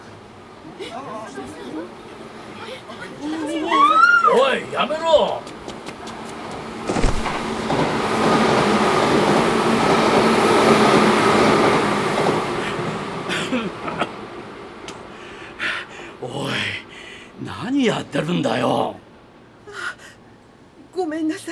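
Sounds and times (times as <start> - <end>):
express train roaring through a station at speed: 0.0 - 21.5
speech: 0.8 - 5.5, 17.8 - 19.0
rhythmic rail clatter: 5.6 - 10.3.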